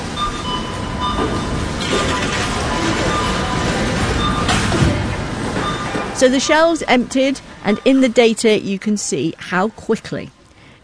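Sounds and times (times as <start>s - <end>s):
train carrying air conditioners rolling along rails: 0.0s - 8.2s
speech: 6.2s - 10.4s.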